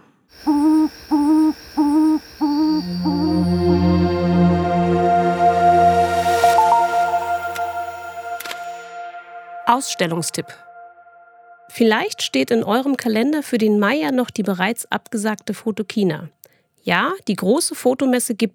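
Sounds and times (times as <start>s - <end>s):
frogmouth bird hooting calls: 0.3s - 4.5s
steady droning tone: 0.4s - 12.3s
speech: 9.8s - 10.7s, 11.8s - 18.5s.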